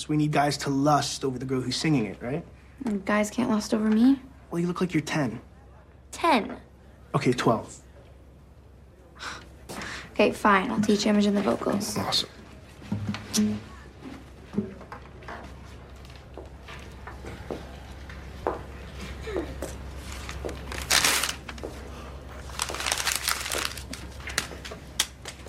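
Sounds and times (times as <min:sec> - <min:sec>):
speech: 0:00.0 - 0:05.5, 0:06.1 - 0:07.8, 0:10.2 - 0:12.4, 0:13.4 - 0:13.7
low steady hum: 0:00.0 - 0:25.4
paper crinkling and crumpling: 0:20.0 - 0:25.4.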